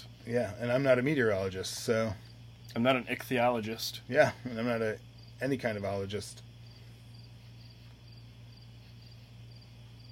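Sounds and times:
crickets chirping: 0.0 - 10.1
low hum from household appliances: 0.0 - 10.1
speech: 0.3 - 6.5.

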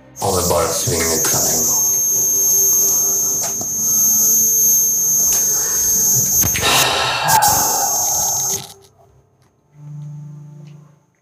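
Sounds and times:
steady high-pitched electronic whine: 0.1 - 8.9
speech: 0.2 - 1.7
phone buzzing in a short low vibrating burst: 0.2 - 8.9.

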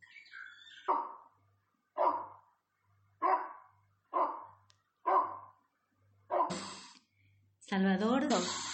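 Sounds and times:
faint bird chirps: 0.0 - 1.4
puppy barking in sharp yips: 0.9 - 1.2, 2.0 - 2.4, 3.2 - 5.6, 6.3 - 6.6
speech: 7.7 - 8.7.

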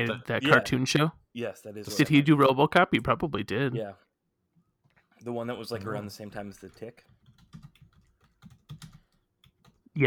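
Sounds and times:
speech: 0.0 - 4.0, 5.2 - 7.6
typing on a computer keyboard: 6.7 - 9.8.

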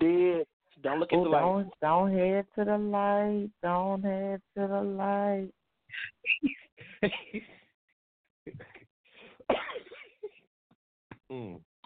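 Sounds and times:
speech: 0.8 - 7.6, 11.3 - 11.6
person coughing: 9.5 - 10.2.

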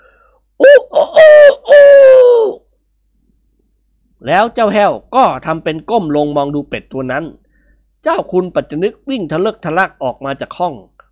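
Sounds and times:
man imitating a rooster crowing with his voice: 0.6 - 2.6
speech: 4.2 - 7.4, 8.0 - 10.9.

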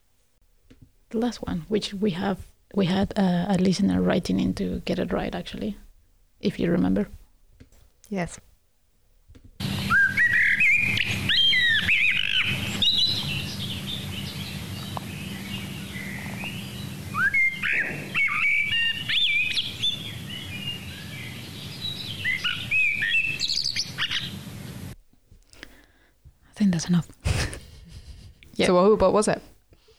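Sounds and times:
faint low hum: 0.0 - 29.9
speech: 0.7 - 5.8, 6.4 - 7.2, 8.1 - 8.5, 26.9 - 27.1, 28.7 - 29.5
blackbird singing fluting phrases with twittering flourishes: 9.6 - 24.4.

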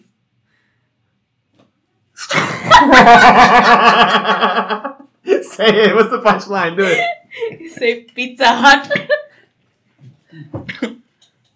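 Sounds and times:
throaty chronic cough from winter allergies: 2.2 - 2.8, 10.4 - 11.0
laughter: 2.2 - 8.0, 8.6 - 9.3
speech: 2.9 - 9.2.

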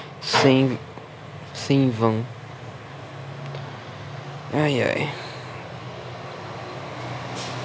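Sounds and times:
speech: 0.3 - 0.9, 1.6 - 2.4, 4.5 - 5.2
heavy truck rumbling past outside: 2.8 - 7.6.

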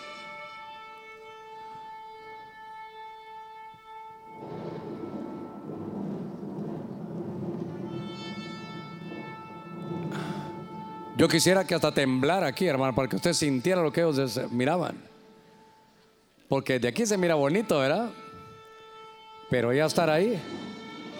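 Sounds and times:
shofar horn blast: 0.0 - 15.9, 17.0 - 21.1
rush of broad noise: 4.4 - 11.2
speech: 11.2 - 15.1, 16.5 - 18.2, 19.5 - 20.6.

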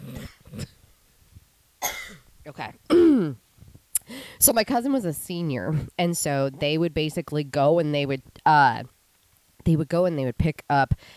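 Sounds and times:
faint low grunt: 0.0 - 0.8, 2.9 - 3.4
person coughing roughly: 0.0 - 0.8, 1.8 - 2.2, 2.9 - 3.4
speech: 2.5 - 3.4, 4.4 - 8.9, 9.6 - 11.1.

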